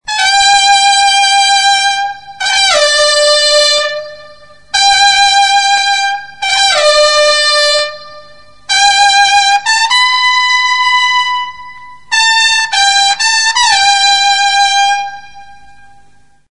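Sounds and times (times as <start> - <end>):
trumpets playing at a bullfight: 0.1 - 16.1.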